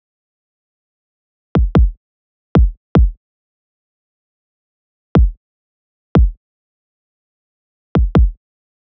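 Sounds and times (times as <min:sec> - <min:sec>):
pop kick drum loop: 0:01.6 - 0:02.0, 0:02.6 - 0:03.2, 0:08.0 - 0:08.4.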